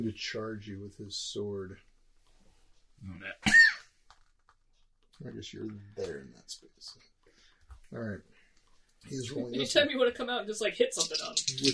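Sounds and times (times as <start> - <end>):
speech: 0.0 - 1.9, 3.0 - 3.7, 5.2 - 7.1, 7.9 - 8.3, 9.0 - 11.7
sneeze: 3.4 - 3.8.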